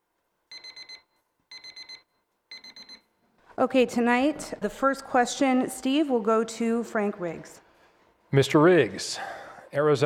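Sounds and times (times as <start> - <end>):
electronic timer tone signalling debate speaking time is up: 0.5 - 3.1
speech: 3.6 - 7.6, 8.3 - 10.0.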